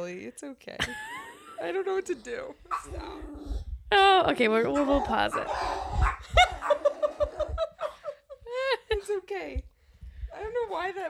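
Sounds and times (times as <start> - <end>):
speech: 0.1 - 6.5, 9.1 - 9.7, 10.3 - 11.0
laughter: 0.8 - 2.1, 6.2 - 9.1
dog barking in short high yaps: 2.7 - 3.2, 4.6 - 7.5.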